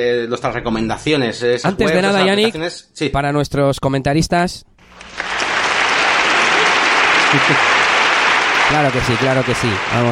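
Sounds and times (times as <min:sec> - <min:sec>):
speech: 0:00.0 - 0:04.7, 0:07.3 - 0:07.7, 0:08.7 - 0:10.1
crowd applause: 0:04.8 - 0:10.1
laughter: 0:05.3 - 0:10.0.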